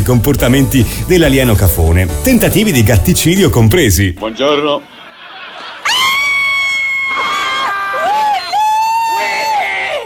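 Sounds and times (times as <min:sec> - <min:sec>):
speech: 0:00.0 - 0:04.9
laughter: 0:04.2 - 0:10.0
group of people shouting and cheering: 0:05.6 - 0:10.0.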